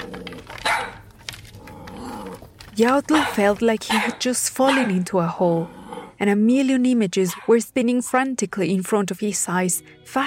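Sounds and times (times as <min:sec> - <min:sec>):
dog barking excitedly: 0:00.6 - 0:01.1, 0:03.0 - 0:05.1, 0:07.3 - 0:07.6
speech: 0:02.8 - 0:10.2.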